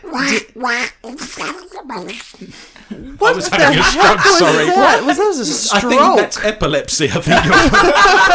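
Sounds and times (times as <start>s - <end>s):
voice imitating a cartoon duck rapping: 0.0s - 2.5s
speech: 0.1s - 8.3s
laughter: 2.8s - 6.2s, 7.1s - 8.3s.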